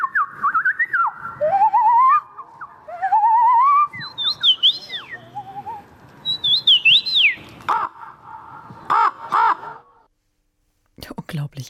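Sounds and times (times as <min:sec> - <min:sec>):
person whistling an imitation of wren song: 0:00.0 - 0:07.4
harsh caw-like calls: 0:07.7 - 0:10.1.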